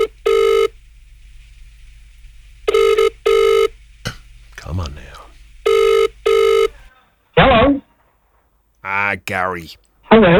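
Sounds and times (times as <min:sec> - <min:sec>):
faint hum: 0:00.0 - 0:06.9, 0:08.6 - 0:10.0
electronic telephone ringback tone on an outgoing call: 0:02.7 - 0:03.7, 0:05.7 - 0:06.7
speech: 0:04.7 - 0:05.3, 0:09.1 - 0:10.3.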